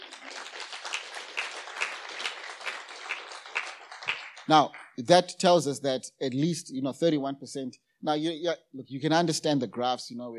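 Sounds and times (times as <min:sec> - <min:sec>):
audience applauding: 0:00.0 - 0:05.0
speech: 0:04.5 - 0:10.3.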